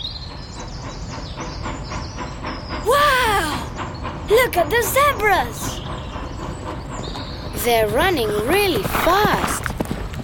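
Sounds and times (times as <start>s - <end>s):
train clattering along rails with clickety-clack and low roar: 0.0s - 10.2s
speech: 4.3s - 5.8s, 7.6s - 9.5s.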